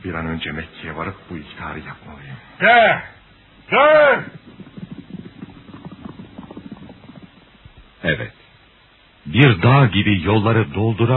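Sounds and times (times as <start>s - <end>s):
speech: 0.0s - 4.5s, 8.0s - 8.4s, 9.3s - 11.1s
horse galloping at full speed: 3.6s - 8.0s.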